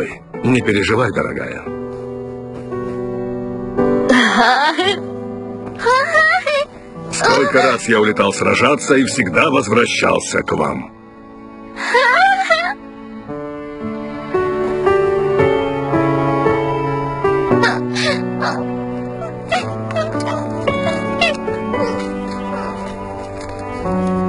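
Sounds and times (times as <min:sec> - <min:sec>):
speech: 0:00.0 - 0:01.8, 0:04.4 - 0:05.1, 0:07.2 - 0:11.0
soft sustained orchestral music: 0:00.0 - 0:24.2
child whimpering with tearful cry: 0:05.8 - 0:07.8, 0:11.9 - 0:12.8, 0:17.6 - 0:18.6, 0:19.2 - 0:22.8.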